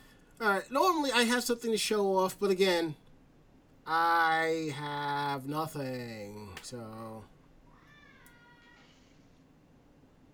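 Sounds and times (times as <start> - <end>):
quiet room hum: 0.0 - 10.3
speech: 0.4 - 3.0, 3.9 - 7.3
child's high wavering cat-like shriek from upstairs: 7.7 - 9.1.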